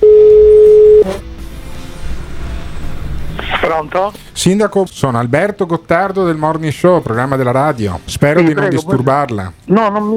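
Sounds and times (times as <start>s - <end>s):
loud steady telephone ringing tone: 0.0s - 1.2s
speech: 3.7s - 10.1s.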